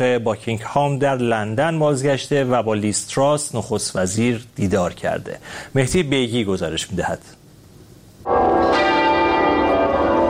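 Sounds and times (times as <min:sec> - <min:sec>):
speech: 0:00.0 - 0:07.4
church bell ringing: 0:08.3 - 0:10.2.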